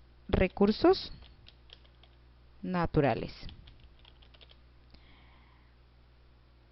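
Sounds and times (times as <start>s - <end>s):
steady low hum: 0.0s - 6.7s
speech: 0.4s - 1.2s, 2.6s - 3.5s
typing on a computer keyboard: 1.2s - 2.2s, 3.4s - 4.6s.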